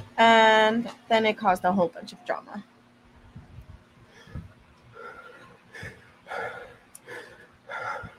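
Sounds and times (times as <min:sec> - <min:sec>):
speech: 0:00.2 - 0:02.7
heavy breathing into the microphone: 0:04.0 - 0:08.1.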